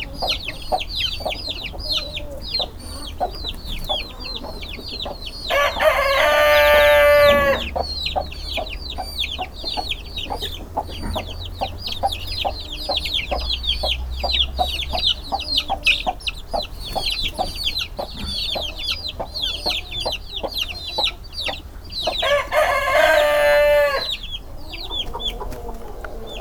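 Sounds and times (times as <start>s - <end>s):
Hungarian hen clucking in a farmyard: 0.0s - 26.3s
dense rapid high-pitched chick peeps: 0.0s - 26.3s
rooster's drawn-out crow in a farmyard: 5.4s - 7.8s, 22.2s - 26.3s.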